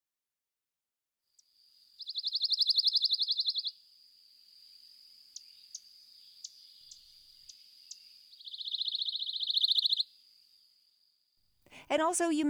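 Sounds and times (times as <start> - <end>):
faint high insect hum: 1.3 - 11.4
pine warbler singing trills: 1.9 - 3.8, 4.5 - 10.4
speech: 11.9 - 12.4.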